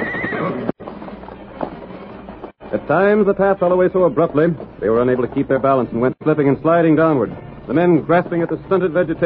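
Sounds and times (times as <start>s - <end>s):
horses whinnying on a steep canyon trail: 0.0s - 0.8s
horse hooves scraping on a steep canyon trail: 0.0s - 9.2s
speech: 2.9s - 9.2s.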